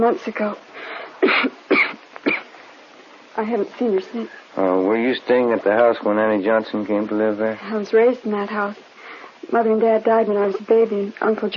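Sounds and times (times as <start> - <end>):
speech: 0.0 - 1.9, 3.4 - 8.9, 9.5 - 11.5
woman coughing: 1.2 - 2.5.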